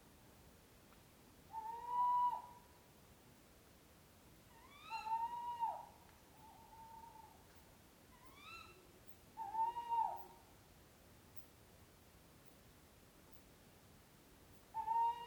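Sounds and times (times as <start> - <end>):
faint steady hiss: 0.0 - 15.2
owl hooting: 1.5 - 2.7, 4.5 - 7.4, 8.2 - 10.4, 14.7 - 15.2.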